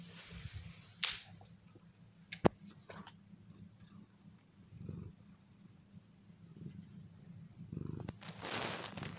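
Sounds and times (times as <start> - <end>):
soft rustles and brushing of a cat being stroked: 0.0 - 7.2, 8.0 - 9.1
cat purring: 3.4 - 9.1.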